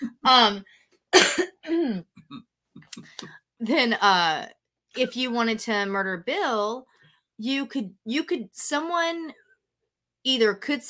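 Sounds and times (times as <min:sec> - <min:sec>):
speech: 0:00.0 - 0:02.1, 0:03.2 - 0:09.4, 0:10.2 - 0:10.8
people coughing while getting over being sick: 0:01.2 - 0:01.5.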